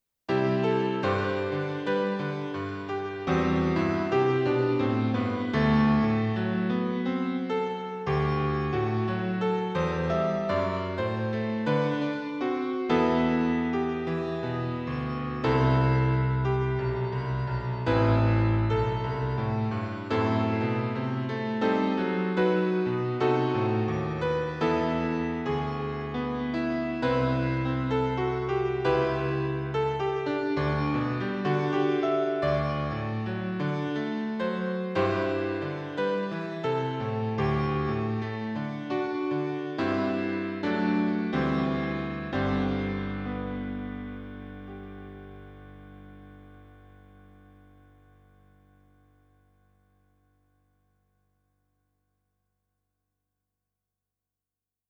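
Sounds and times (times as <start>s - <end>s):
romantic classical music: 0.3s - 49.2s.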